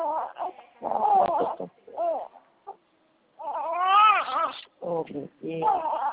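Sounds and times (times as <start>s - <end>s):
small baby crying: 0.0s - 2.8s, 3.4s - 4.7s, 5.6s - 6.1s.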